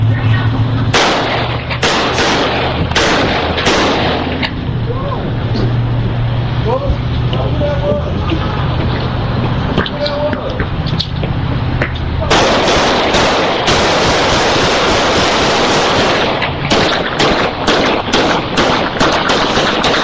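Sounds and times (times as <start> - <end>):
constant noisy roar: 0.0 - 20.0
low engine-like rumble: 0.0 - 20.0
gunfire in Memphis Tennessee: 0.9 - 4.6, 12.3 - 20.0.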